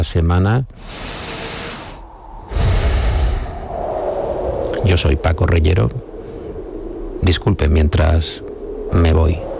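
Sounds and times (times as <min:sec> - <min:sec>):
speech: 0:00.0 - 0:01.2, 0:04.8 - 0:06.1, 0:07.2 - 0:09.5
deep human breath: 0:00.8 - 0:03.9, 0:06.2 - 0:06.8.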